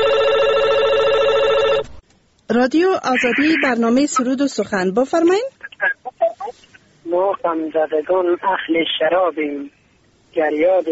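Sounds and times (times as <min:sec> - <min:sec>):
telephone ringing with bright buzzing electronic tone: 0:00.0 - 0:02.0
speech: 0:02.5 - 0:05.6, 0:07.1 - 0:10.9.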